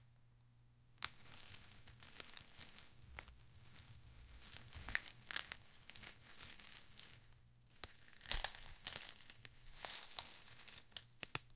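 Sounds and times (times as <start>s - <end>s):
bamboo sticks being tied: 1.1s - 11.4s.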